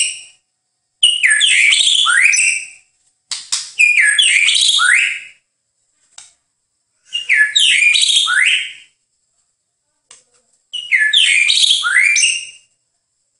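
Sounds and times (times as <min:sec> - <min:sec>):
White-rumped shama song of tumbling whistles and chattery notes: 0:00.0 - 0:00.4, 0:01.0 - 0:02.9, 0:03.8 - 0:05.4, 0:07.0 - 0:09.0, 0:10.8 - 0:12.7.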